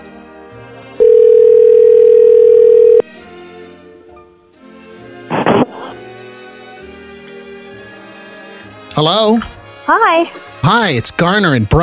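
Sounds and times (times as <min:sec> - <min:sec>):
loud steady telephone dial tone: 0:01.0 - 0:03.0
speech: 0:09.0 - 0:11.8.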